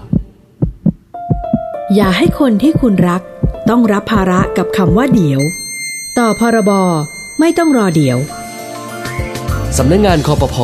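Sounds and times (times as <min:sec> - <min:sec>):
heavy rapidly pounding heartbeat: 0:00.0 - 0:05.4
steady high electronic tone droning: 0:00.7 - 0:10.2
speech: 0:01.9 - 0:05.6, 0:06.2 - 0:08.4, 0:09.7 - 0:10.6.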